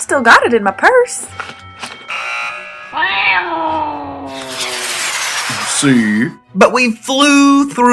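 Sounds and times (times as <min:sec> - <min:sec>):
speech: 0:00.1 - 0:01.6, 0:02.9 - 0:04.2, 0:05.8 - 0:07.9
cat yowling and caterwauling: 0:03.0 - 0:04.0.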